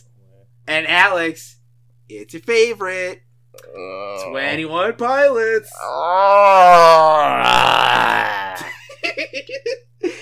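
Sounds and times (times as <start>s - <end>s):
speech: 0.7s - 10.1s
man groaning: 3.6s - 4.4s, 5.7s - 8.8s.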